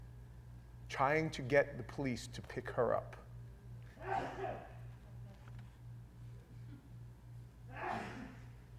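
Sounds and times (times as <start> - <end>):
speech: 0.9 - 3.2
person sneezing: 4.0 - 4.8, 7.7 - 8.6.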